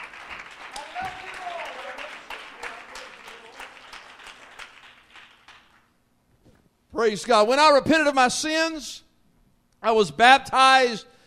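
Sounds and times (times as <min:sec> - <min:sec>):
seated audience clapping hands in praise at a worship service: 0:00.0 - 0:06.0
speech: 0:07.0 - 0:09.0, 0:09.8 - 0:11.1.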